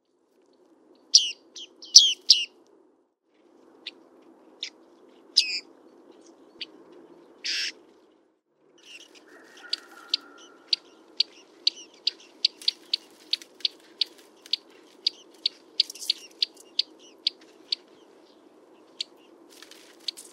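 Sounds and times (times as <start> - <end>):
bearded reedling calls: 1.1 - 2.5, 5.4 - 5.6, 7.4 - 7.8, 8.8 - 18.0.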